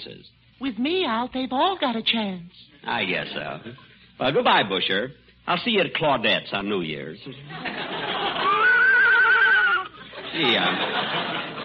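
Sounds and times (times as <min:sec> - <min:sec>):
speech: 0:00.0 - 0:08.5, 0:10.3 - 0:11.6
steady hiss: 0:00.0 - 0:11.6
laughter: 0:07.5 - 0:11.6
horse whinnying at the starting gate of a horse race: 0:08.4 - 0:10.0.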